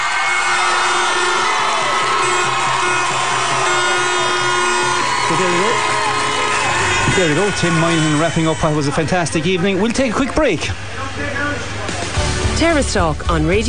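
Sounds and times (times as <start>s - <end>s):
large crowd applauding: 0.0s - 10.6s
large crowd cheering with whoops and shouting: 0.0s - 12.2s
speech: 5.4s - 5.9s, 7.2s - 11.3s, 12.6s - 13.6s.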